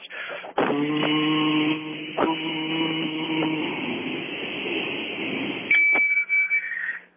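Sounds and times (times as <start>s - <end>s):
breath blown into car ignition interlock breathalyzer: 0.1s - 5.7s
speech: 0.8s - 1.1s
high beep: 5.7s - 7.0s.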